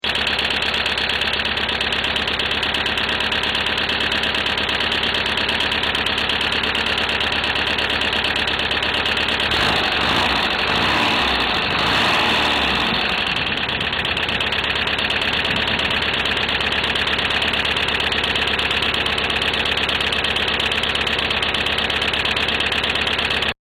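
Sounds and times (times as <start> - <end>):
noisy engine lifters: 0.0 - 23.6.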